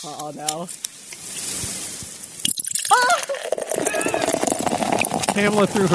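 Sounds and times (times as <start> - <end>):
speech: 0.0 - 1.5, 5.4 - 5.9
beer pouring into a glass: 2.5 - 5.9.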